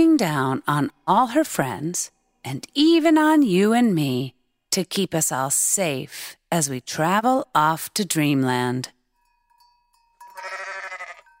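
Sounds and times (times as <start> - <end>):
speech: 0.0 - 9.0
single loud wavering sheep bleat: 10.3 - 11.3.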